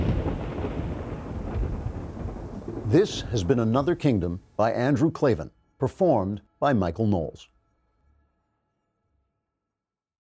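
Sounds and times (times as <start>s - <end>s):
deep thunder rumbling from an approaching storm: 0.0s - 5.5s
faint hiss of rain: 0.0s - 7.4s
speech: 2.9s - 7.5s.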